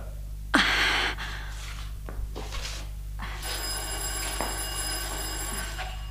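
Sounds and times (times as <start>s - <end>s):
low electrical hum: 0.0s - 6.0s
doorbell ringing: 3.4s - 6.0s.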